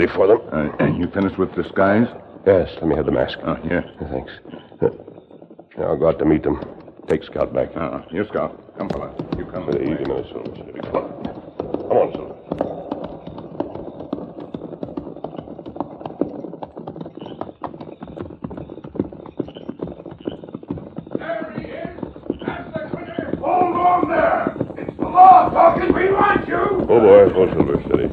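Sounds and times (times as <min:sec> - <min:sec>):
speech: 0:00.0 - 0:05.1, 0:05.8 - 0:11.3, 0:11.9 - 0:12.7
horses approaching at a brisk pace: 0:00.0 - 0:28.1
jumble of voices and crowd noise: 0:22.8 - 0:27.6.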